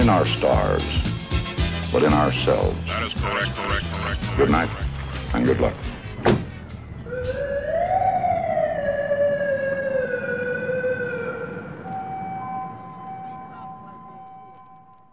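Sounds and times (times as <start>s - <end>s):
steady tones in a sound-collage piece: 0.0s - 15.1s
speech: 0.1s - 1.1s, 1.9s - 6.4s
siren wailing in a sound-collage piece: 2.9s - 15.1s.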